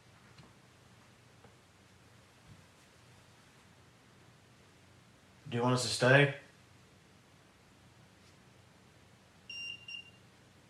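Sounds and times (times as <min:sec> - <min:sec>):
quiet hiss: 0:00.0 - 0:10.6
speech: 0:05.5 - 0:06.4
high-pitched short electronic beeps: 0:09.5 - 0:10.2.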